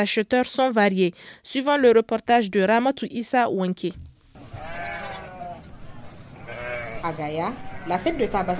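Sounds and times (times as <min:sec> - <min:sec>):
speech: 0:00.0 - 0:04.7, 0:07.0 - 0:08.5
murmur of market noise at a livestock market: 0:04.4 - 0:08.5
sheep bleating at a livestock market: 0:04.4 - 0:08.5.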